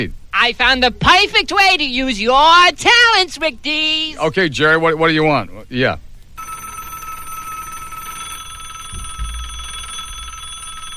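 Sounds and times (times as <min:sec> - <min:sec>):
speech: 0:00.0 - 0:06.1
telethon telephones ringing electronically: 0:06.4 - 0:10.9.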